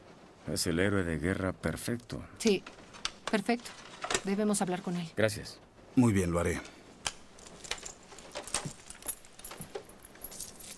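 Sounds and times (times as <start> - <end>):
speech: 0.5 - 6.8
handcuff keys jangling: 7.3 - 10.7.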